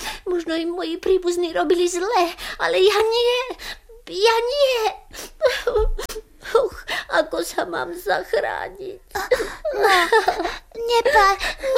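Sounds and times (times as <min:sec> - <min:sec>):
speech: 0:00.3 - 0:11.7
child crying and whimpering: 0:04.7 - 0:06.9, 0:09.1 - 0:11.7.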